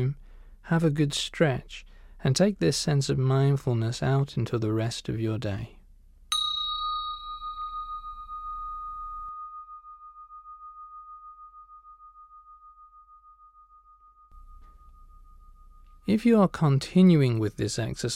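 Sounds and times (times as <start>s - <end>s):
speech: 0.0s - 5.8s, 16.1s - 18.1s
meditation bell ringing: 6.3s - 16.1s.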